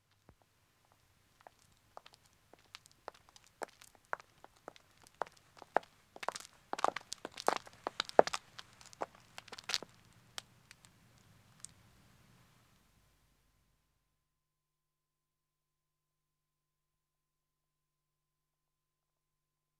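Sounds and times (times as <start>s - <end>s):
two women walking on a country road: 0.2s - 11.8s.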